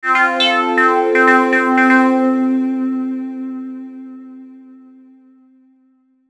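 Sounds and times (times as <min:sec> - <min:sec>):
filtered synth arpeggio melody: 0:00.0 - 0:04.7.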